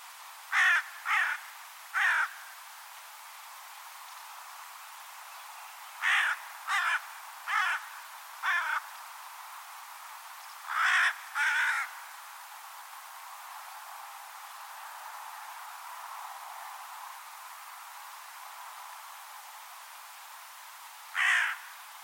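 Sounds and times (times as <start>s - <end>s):
faint steady hiss: 0.0s - 22.0s
bird cawing: 0.5s - 2.4s, 6.0s - 8.9s, 10.7s - 12.1s, 21.1s - 21.7s.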